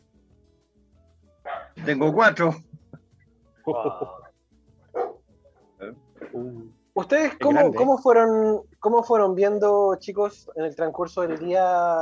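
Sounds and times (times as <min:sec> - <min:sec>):
dog barking: 0:01.5 - 0:01.8, 0:04.9 - 0:05.3
speech: 0:01.8 - 0:02.7, 0:03.7 - 0:04.2, 0:06.4 - 0:12.0
laughter: 0:03.7 - 0:04.3.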